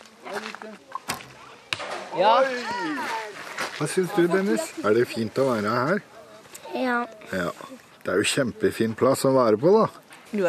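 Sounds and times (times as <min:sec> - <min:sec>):
speech: 0:00.6 - 0:01.0, 0:02.1 - 0:03.2, 0:03.8 - 0:06.1, 0:06.8 - 0:10.4
arrows shot from a bow landing with sharp thwacks: 0:01.1 - 0:02.2.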